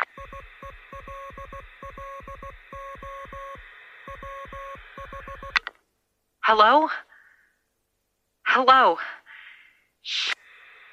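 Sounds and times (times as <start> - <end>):
Morse code beeps on a radio receiver: 0.0 - 5.6
speech: 6.5 - 7.0, 8.6 - 9.2, 10.0 - 10.3.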